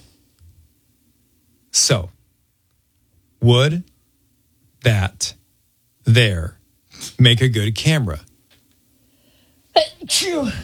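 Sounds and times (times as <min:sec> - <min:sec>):
speech: 0:01.8 - 0:02.2, 0:03.4 - 0:03.9, 0:04.8 - 0:05.4, 0:06.1 - 0:08.3, 0:09.8 - 0:10.6
person sneezing: 0:09.8 - 0:10.6.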